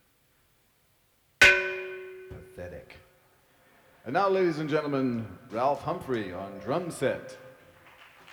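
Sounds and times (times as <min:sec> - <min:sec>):
metallic gong strike: 0:01.4 - 0:02.5
speech: 0:02.3 - 0:03.1, 0:04.0 - 0:07.4.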